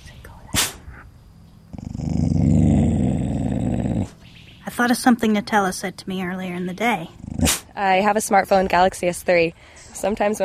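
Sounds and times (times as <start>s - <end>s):
dog growling into a snarl: 1.7s - 4.2s, 7.0s - 7.8s
speech: 4.8s - 10.4s.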